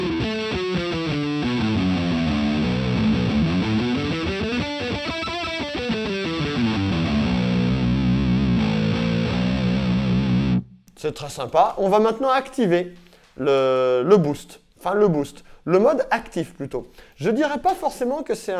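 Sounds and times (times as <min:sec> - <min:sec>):
fuzzy slightly overdriven electric guitar playing melodic phrases: 0:00.0 - 0:10.8
speech: 0:11.0 - 0:18.5.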